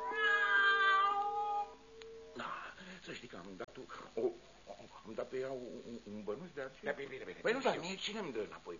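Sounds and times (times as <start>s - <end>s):
cat meowing in a sack: 0.1s - 1.7s
speech: 5.4s - 8.7s.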